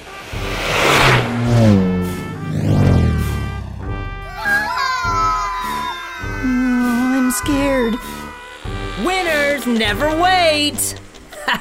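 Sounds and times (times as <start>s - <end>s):
electric scooter ridden by a boy speeding past: 0.2s - 3.8s
children shouting: 4.2s - 8.5s
speech: 9.8s - 11.5s.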